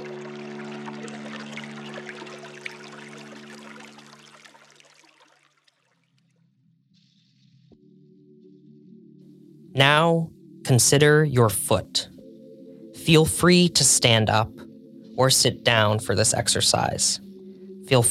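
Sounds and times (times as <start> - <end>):
water pouring and trickling: 0.0 - 6.3
speech: 9.8 - 12.1, 13.0 - 17.3, 17.9 - 18.0.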